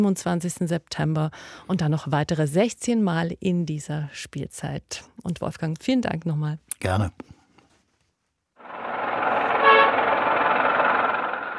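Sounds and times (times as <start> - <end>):
speech: 0.0 - 7.4
dense city traffic rumbling and hissing: 8.6 - 11.5
car horn toot in city traffic: 9.4 - 10.2.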